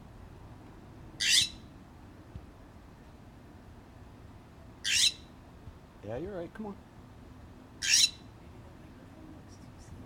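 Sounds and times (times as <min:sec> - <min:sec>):
low hum: 0:00.0 - 0:10.0
scrub jay calling while landing on a hand for peanuts: 0:01.2 - 0:01.7, 0:04.8 - 0:05.4, 0:07.8 - 0:08.3
speech: 0:06.1 - 0:06.9.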